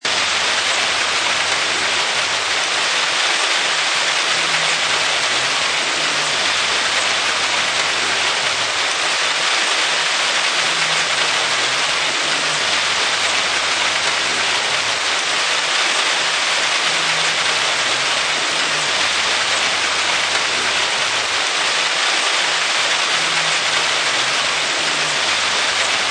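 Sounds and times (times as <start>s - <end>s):
high-pitched rain shower: 0.0s - 26.0s.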